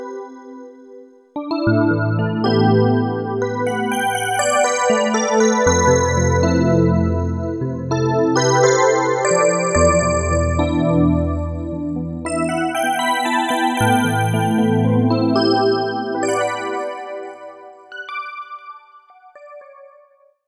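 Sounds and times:
electric piano on an Akai SG01v: 1.7 - 17.3.

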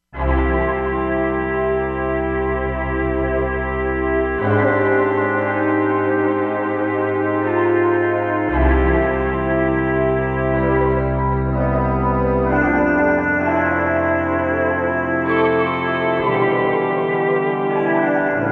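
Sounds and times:
autumn synth pad: 0.2 - 18.5.

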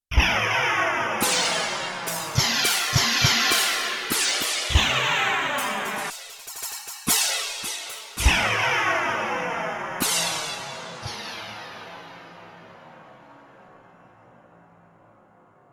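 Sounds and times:
cymbal with chorus and flange effects: 0.2 - 15.0.

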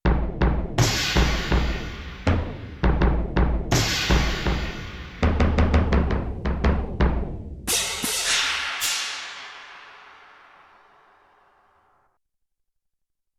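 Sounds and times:
deep modulated bass drum on sampler: 0.0 - 10.0
deep modulated cymbals on sampler: 0.8 - 3.1, 3.7 - 6.2, 7.7 - 11.9.

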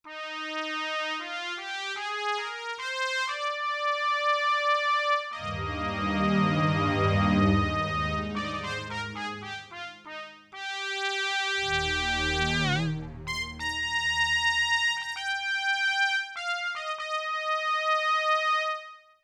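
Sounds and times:
sampled trumpet: 0.1 - 19.0
sampled low strings: 5.4 - 9.7, 11.7 - 13.8.

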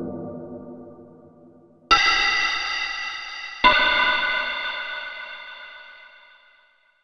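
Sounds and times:
anvil percussion: 1.9 - 6.7.

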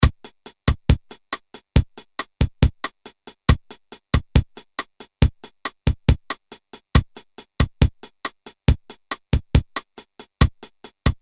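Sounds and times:
Boss DR-220A drum machine bossa nova preset pattern: 0.0 - 11.2.

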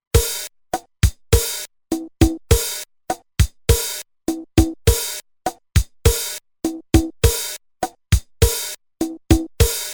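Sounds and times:
mambo drum machine rhythm: 0.1 - 9.9.

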